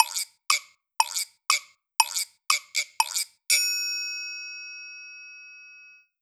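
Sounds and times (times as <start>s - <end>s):
thinking time percussion music: 0.0s - 3.7s.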